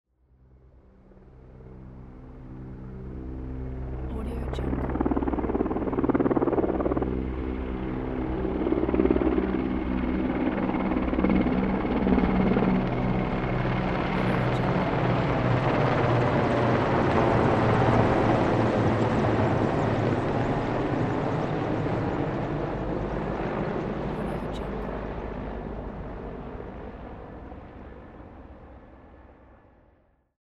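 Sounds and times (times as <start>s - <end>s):
military helicopters flying by: 1.1s - 29.8s.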